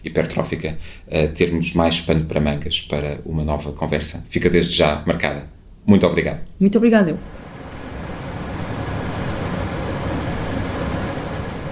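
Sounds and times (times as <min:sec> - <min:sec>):
speech: 0:00.0 - 0:07.4
machine noise in a laboratory glassware washing room: 0:07.2 - 0:11.7
running water in a laboratory glassware washing room: 0:07.2 - 0:11.7.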